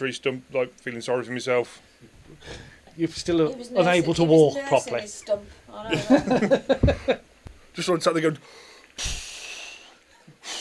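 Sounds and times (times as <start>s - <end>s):
speech: 0.0s - 7.2s, 7.8s - 9.2s
laughter: 5.8s - 7.3s
voice imitating exhaling with breathy hissing outbreaths: 9.0s - 10.5s.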